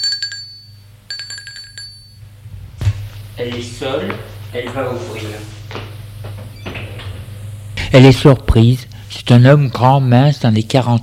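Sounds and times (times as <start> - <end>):
doorbell ringing at a home: 0.0 - 2.3
low steady hum: 0.0 - 11.0
speech: 3.4 - 5.8, 7.9 - 11.0.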